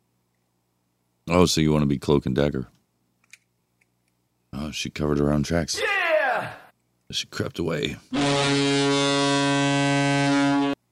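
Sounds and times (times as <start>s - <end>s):
speech: 1.3s - 2.8s, 4.7s - 6.0s, 7.1s - 8.8s
loud brassy air horn blast: 8.1s - 10.8s.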